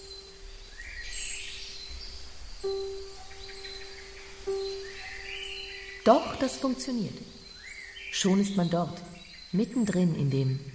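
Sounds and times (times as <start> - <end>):
steady low ambience: 0.0 - 9.1
birds chirping and singing in a forest at dawn: 0.0 - 10.7
sustained ringing tone: 2.6 - 7.4
speech: 6.0 - 7.4, 8.2 - 10.7.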